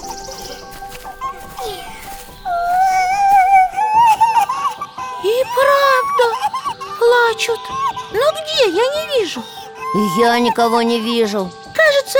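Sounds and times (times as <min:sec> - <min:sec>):
person crying with high wavering whimpers: 0:01.0 - 0:06.4
speech: 0:07.4 - 0:12.1.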